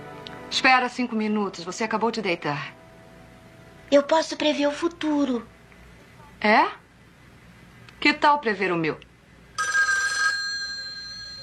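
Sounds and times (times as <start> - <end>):
speech: 0.5 - 2.8, 3.9 - 5.5, 6.4 - 6.8, 8.0 - 9.1
telephone bell ringing: 9.6 - 11.4.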